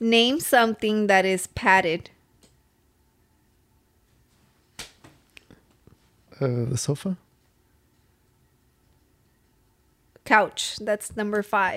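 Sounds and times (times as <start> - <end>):
speech: 0.0 - 2.2, 6.4 - 7.2, 10.3 - 11.7
hiss: 2.2 - 11.3
hand slapping a knee: 4.7 - 5.3.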